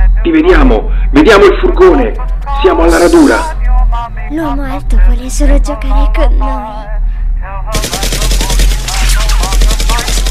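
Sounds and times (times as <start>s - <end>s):
speech: 0.2s - 7.0s
rapid machine-gun-like gunfire bursts: 7.7s - 10.2s.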